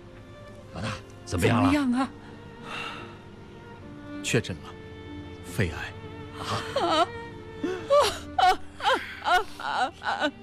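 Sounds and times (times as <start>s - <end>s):
speech: 1.3s - 2.2s, 4.3s - 4.8s, 5.6s - 7.1s, 9.8s - 10.4s
woman wailing and sobbing in grief: 6.4s - 10.4s.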